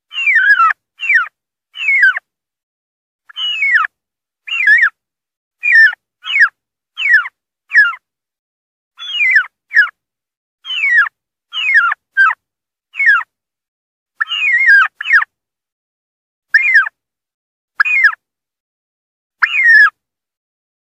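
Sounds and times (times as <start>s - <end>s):
wild turkey distress calling: 0.1s - 2.2s, 3.3s - 3.9s, 4.5s - 5.0s, 5.6s - 8.0s, 9.0s - 9.9s, 10.6s - 12.4s, 13.0s - 13.3s, 14.2s - 15.3s, 16.5s - 16.9s, 17.8s - 18.2s, 19.4s - 20.0s.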